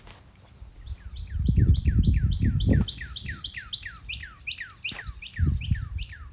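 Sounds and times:
bird chirping outdoors: 0.8s - 6.3s.

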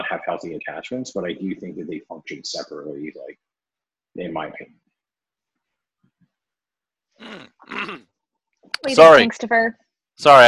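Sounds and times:
speech: 0.1s - 3.5s, 4.2s - 4.8s, 7.2s - 10.4s
raspy coughs: 7.2s - 8.1s
faint low throat sounds: 7.2s - 8.2s.

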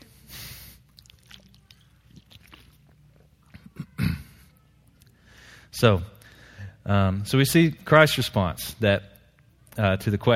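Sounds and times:
person sipping water: 0.7s - 3.7s
wet mouth clicks: 0.8s - 3.7s
swallowing: 0.8s - 4.2s
soft breath: 5.1s - 6.8s
speech: 5.7s - 6.2s, 6.9s - 9.1s, 9.8s - 10.3s.

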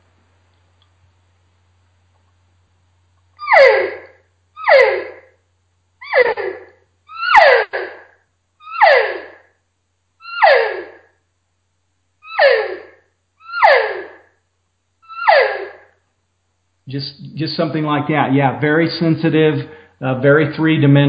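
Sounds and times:
nasal elk cow calls blown on a game call: 3.4s - 4.0s, 4.6s - 5.2s, 8.6s - 9.4s, 10.2s - 11.0s, 12.2s - 14.2s, 15.0s - 15.8s
speech: 16.9s - 21.0s.

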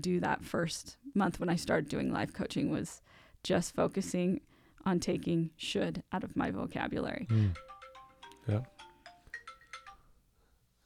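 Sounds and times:
speech: 0.0s - 7.7s, 8.5s - 8.8s
phone ringtone with bright electronic notes: 7.3s - 10.1s.

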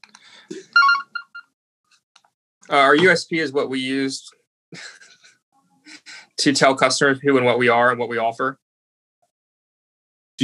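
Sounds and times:
phone ringtone with bright electronic melody: 0.8s - 1.5s
short beeps: 0.8s - 1.5s
speech: 2.7s - 5.0s, 6.4s - 8.6s.

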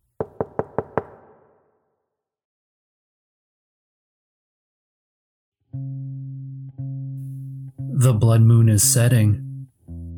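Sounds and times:
loud rapid knocking on a front door: 0.2s - 1.4s
speech: 8.0s - 9.4s.

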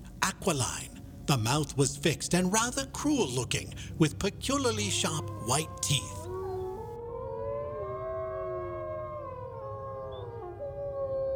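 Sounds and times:
low rumbling background: 0.0s - 6.9s
speech: 0.4s - 6.2s
several wolves howling together: 2.5s - 11.3s.

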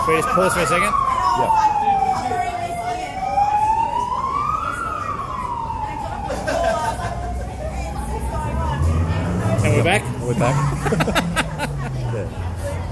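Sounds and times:
speech: 0.0s - 1.8s, 9.6s - 11.3s
emergency vehicle siren passing: 0.0s - 12.9s
laughter: 6.2s - 7.9s, 9.5s - 12.8s.

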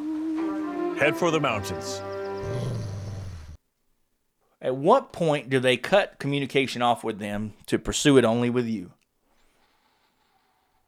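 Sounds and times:
speech: 1.0s - 2.8s, 4.6s - 9.0s
wolf growling: 2.4s - 3.5s.

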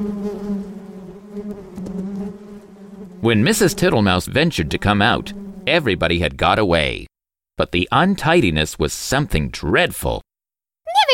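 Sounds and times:
bees buzzing from disturbed nest being pulled out: 0.0s - 6.0s
speech: 3.2s - 10.2s.

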